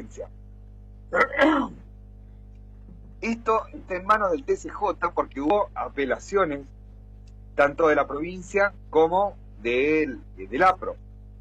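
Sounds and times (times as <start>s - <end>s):
speech: 0.1s - 0.4s, 1.1s - 1.8s, 3.2s - 6.8s, 7.6s - 11.0s
person coughing or clearing the throat: 1.2s - 1.8s.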